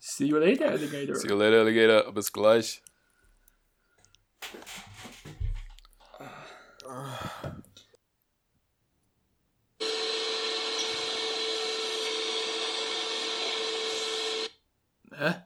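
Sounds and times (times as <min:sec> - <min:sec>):
speech: 0:00.2 - 0:02.9, 0:15.2 - 0:15.4
laughter: 0:00.5 - 0:01.3
vacuum cleaner running: 0:09.8 - 0:14.5.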